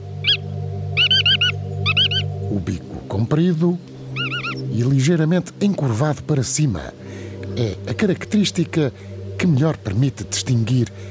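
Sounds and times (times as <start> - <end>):
bar-tailed godwit calling: 0.0 - 6.0
steady low rumbling hum: 0.0 - 11.0
speech: 2.7 - 3.9, 4.8 - 11.0.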